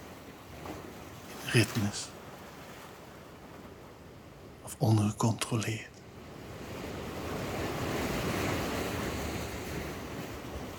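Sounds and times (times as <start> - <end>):
ocean surf breaking on shore: 1.0 - 3.0, 6.4 - 10.7
speech: 1.5 - 2.2, 4.8 - 5.9.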